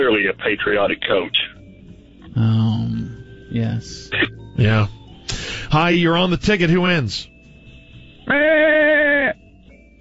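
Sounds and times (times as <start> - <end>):
speech: 0.0 - 1.5, 2.3 - 2.6, 3.6 - 5.0, 5.7 - 7.3
goat bleating: 8.3 - 9.4.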